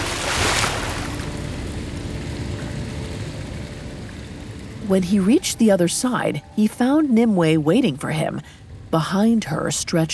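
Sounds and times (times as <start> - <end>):
great waterfall roaring into a pool: 0.0 - 3.8
speech: 4.9 - 10.1.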